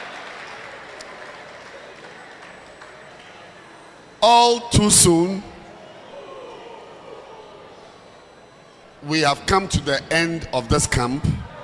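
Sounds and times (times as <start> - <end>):
group applauding at a camp: 0.0 - 3.5
speech: 4.2 - 5.5, 9.1 - 11.4.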